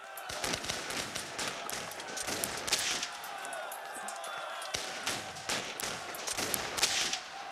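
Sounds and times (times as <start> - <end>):
arquebus gunfire volley from a fortress's defenders: 0.3 - 3.5, 4.3 - 7.4.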